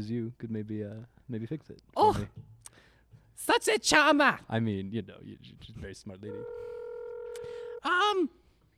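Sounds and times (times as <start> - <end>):
speech: 0.0 - 6.8, 7.4 - 8.4
telephone dial tone: 6.3 - 7.8.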